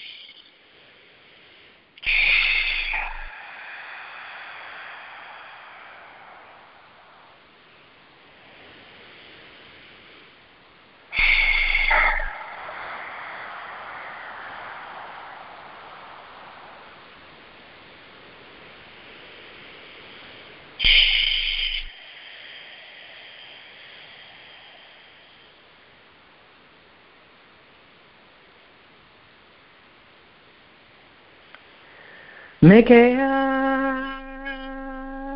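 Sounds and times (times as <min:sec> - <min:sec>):
long slow deep breaths during meditation: 0:00.6 - 0:26.2, 0:31.6 - 0:32.6
speech: 0:32.6 - 0:33.3.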